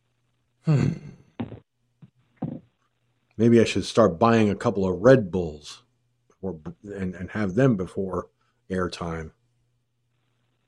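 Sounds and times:
speech: 0.6s - 1.1s, 3.4s - 5.8s, 6.4s - 9.4s
person yawning with a deep drawn-out sigh: 0.7s - 1.6s.

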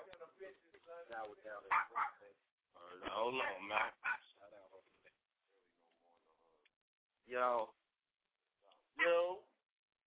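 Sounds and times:
speech: 1.1s - 4.6s, 7.3s - 7.8s
dog barking and yelping: 1.7s - 2.2s, 3.4s - 4.3s.

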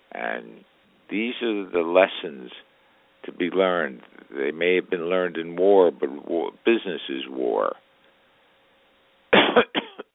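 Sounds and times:
speech: 0.1s - 7.8s, 9.6s - 9.8s
harsh coughing: 9.3s - 10.1s.

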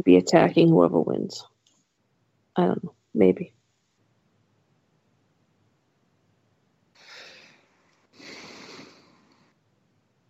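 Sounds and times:
speech: 0.0s - 1.5s, 2.6s - 3.6s
stifled yawn: 7.0s - 9.4s.

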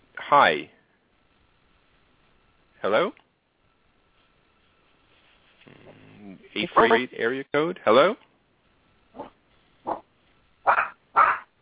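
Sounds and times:
speech: 0.3s - 0.8s, 2.8s - 3.2s, 6.6s - 8.2s
dog barking: 9.2s - 11.5s.

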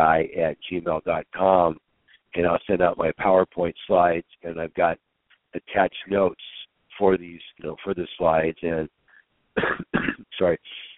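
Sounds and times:
speech: 0.0s - 9.0s, 9.6s - 10.9s
raspy throat clearing by someone a little under the weather: 9.6s - 10.9s.

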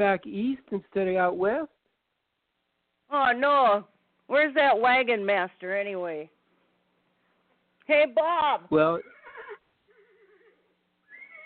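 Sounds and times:
speech: 0.0s - 1.8s, 3.1s - 6.4s, 7.9s - 9.2s
horse neighing: 9.0s - 11.4s.

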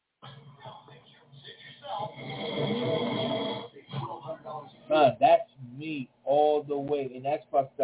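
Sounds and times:
voices: 0.2s - 7.8s
loud rough snoring: 2.1s - 3.7s.

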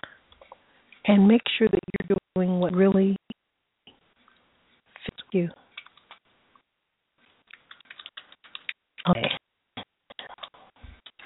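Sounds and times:
speech: 1.1s - 3.2s, 5.3s - 5.6s
typing on a computer keyboard: 5.8s - 6.2s, 7.5s - 9.4s.

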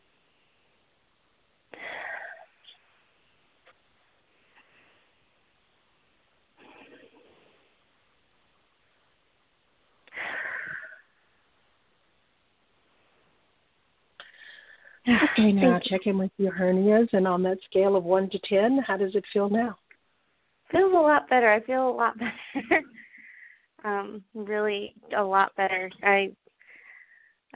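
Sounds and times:
deep breaths during a guided relaxation exercise: 10.1s - 11.3s, 14.2s - 15.1s, 22.9s - 23.8s, 26.5s - 27.5s
speech: 15.1s - 19.8s, 20.7s - 23.0s, 23.8s - 26.4s.

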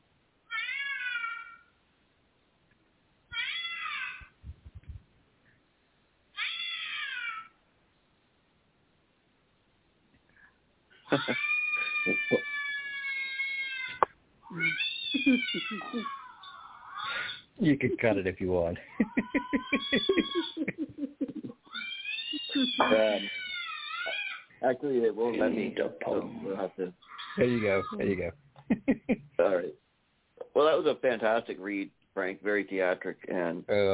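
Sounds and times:
cats meowing: 0.5s - 1.5s, 3.3s - 4.4s, 6.4s - 7.5s, 11.1s - 17.5s, 18.8s - 24.5s, 25.4s - 28.3s
laughter: 11.1s - 12.5s, 15.2s - 16.1s, 17.1s - 21.6s, 22.5s - 23.3s, 24.6s - 29.7s
speech: 11.1s - 12.5s, 15.5s - 16.2s, 17.6s - 20.2s, 22.8s - 23.4s, 24.6s - 29.8s, 30.6s - 33.9s.

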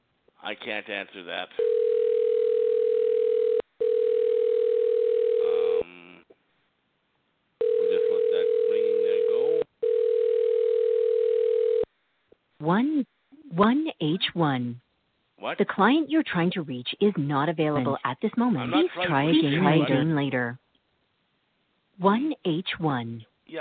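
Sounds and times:
speech: 0.4s - 1.8s, 12.7s - 14.8s, 15.5s - 20.6s, 22.0s - 23.5s
phone line ringing tone on a call: 1.6s - 5.8s, 7.6s - 11.9s.

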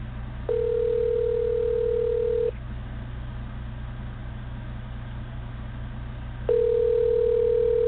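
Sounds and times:
outgoing phone call ringback tone: 0.5s - 2.5s, 6.5s - 7.8s.

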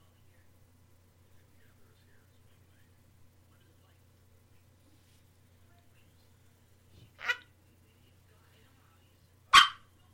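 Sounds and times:
faint low hum: 0.0s - 10.1s
dog barking: 9.5s - 9.9s.

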